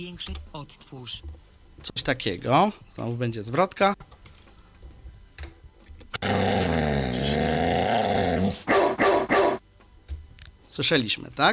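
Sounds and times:
speech: 0.0s - 4.0s, 10.8s - 11.5s
dog growling: 6.2s - 9.6s.

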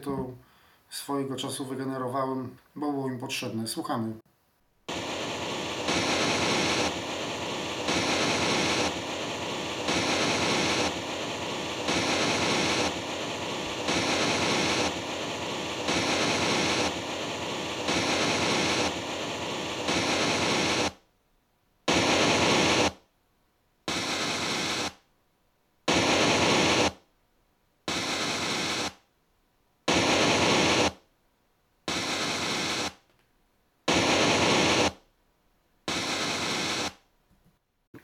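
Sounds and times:
speech: 0.0s - 4.3s
generated phase test signal white noise through a loudspeaker: 4.8s - 21.1s, 21.9s - 23.0s, 23.9s - 25.0s, 25.9s - 27.0s, 27.9s - 29.1s, 29.9s - 31.1s, 31.9s - 33.1s, 33.9s - 35.0s, 35.9s - 37.0s
generated phase test signal noise pulses through a loudspeaker: 4.9s - 21.0s, 21.9s - 23.0s, 23.9s - 25.0s, 25.9s - 27.0s, 27.9s - 29.0s, 29.9s - 31.0s, 31.9s - 33.0s, 33.9s - 35.0s, 35.9s - 37.0s.

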